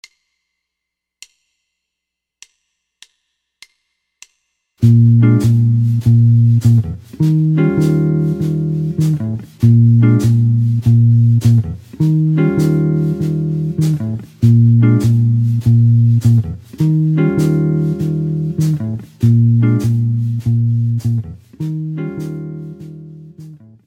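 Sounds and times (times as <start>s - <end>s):
tenor background loops: 4.8s - 23.6s
jazz guitar: 4.8s - 23.8s.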